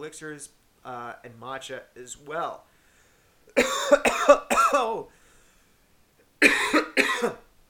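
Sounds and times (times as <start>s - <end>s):
speech: 0.0s - 2.7s, 3.6s - 5.2s, 6.4s - 7.4s
coughing: 3.6s - 5.0s, 6.4s - 7.5s.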